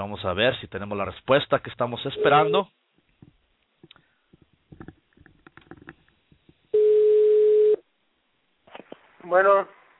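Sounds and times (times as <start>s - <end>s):
speech: 0.0s - 4.0s, 9.2s - 9.8s
telephone ringback tone as a radio show calls a guest: 2.2s - 2.6s, 6.8s - 7.8s.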